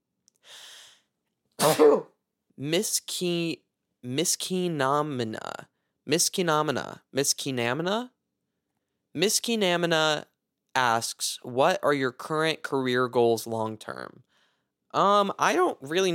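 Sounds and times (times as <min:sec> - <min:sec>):
intake of breath: 0:00.4 - 0:01.1, 0:14.3 - 0:14.7
person sneezing: 0:01.6 - 0:02.1
speech: 0:01.7 - 0:08.2, 0:09.2 - 0:14.3, 0:14.9 - 0:16.1.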